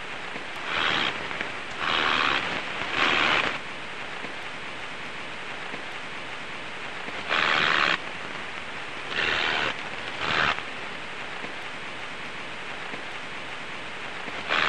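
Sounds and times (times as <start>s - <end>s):
steady broadband noise: 0.0s - 14.6s
Roesel's bush-cricket Metrioptera roeseli song: 0.6s - 3.6s, 7.1s - 8.1s, 9.1s - 10.7s, 14.2s - 14.6s.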